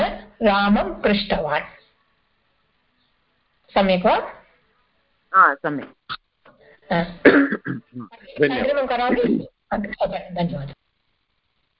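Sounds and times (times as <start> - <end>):
speech: 0.4 - 1.8, 3.7 - 4.4, 5.3 - 6.2, 6.9 - 10.8
vocal sound: 5.4 - 9.9
person coughing: 7.2 - 8.1, 9.1 - 9.5.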